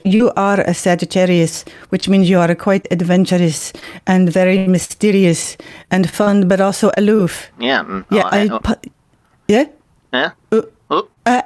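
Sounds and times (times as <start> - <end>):
speech: 0.0 - 11.4
short loud throaty burps: 7.6 - 8.6, 10.1 - 11.2.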